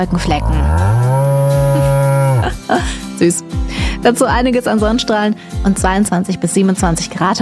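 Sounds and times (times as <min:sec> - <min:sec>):
speech: 0:00.0 - 0:01.8, 0:02.4 - 0:07.4
cow mooing in a low drawn-out bellow: 0:00.1 - 0:02.6.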